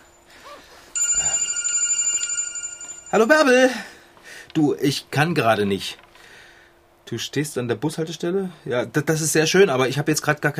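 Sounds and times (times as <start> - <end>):
mobile phone ringing with a warbling electronic tone: 1.0 - 3.5
speech: 3.1 - 3.9, 4.5 - 6.0, 7.1 - 10.5.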